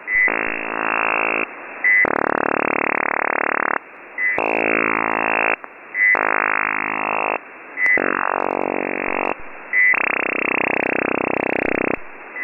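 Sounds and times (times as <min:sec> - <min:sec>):
Australian over-the-horizon radar signal: 0:00.1 - 0:12.4.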